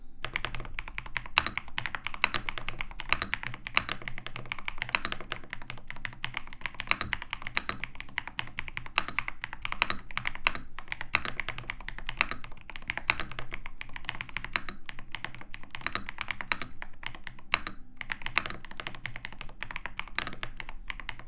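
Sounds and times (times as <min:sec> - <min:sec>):
RedDragon WYVERN K761 PRO keyboard typing: 0:00.2 - 0:21.2.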